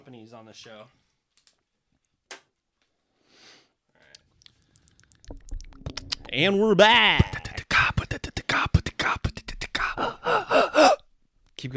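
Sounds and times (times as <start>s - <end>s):
speech: 0.2s - 1.0s, 6.3s - 7.3s, 11.6s - 11.7s
sputtering gasps and choked breaths after inhaling saliva: 4.0s - 11.1s
strained voiced breathing with wheezy laugh-like sound: 7.9s - 11.0s.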